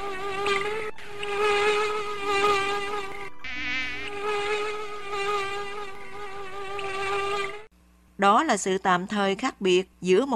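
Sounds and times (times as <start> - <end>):
dense swarm of mosquitoes buzzing inside a tent at night: 0.0 - 7.7
speech: 8.2 - 10.3.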